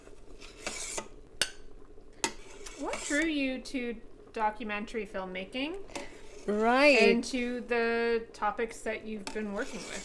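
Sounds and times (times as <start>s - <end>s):
metal utensil skimming foam from a pot of boiling chana dal: 0.0s - 3.4s, 5.8s - 7.6s, 9.1s - 10.0s
speech: 2.8s - 10.0s.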